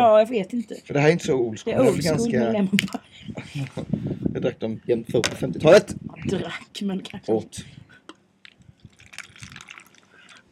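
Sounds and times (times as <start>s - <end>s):
speech: 0.0s - 7.8s
tap water pouring into a mug: 8.9s - 10.4s.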